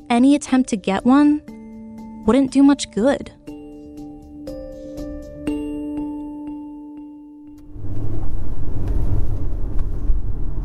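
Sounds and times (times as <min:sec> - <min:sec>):
speech: 0:00.1 - 0:01.6, 0:02.2 - 0:03.4
car engine and road rumble on a drive through a Bay Area town: 0:07.5 - 0:10.6.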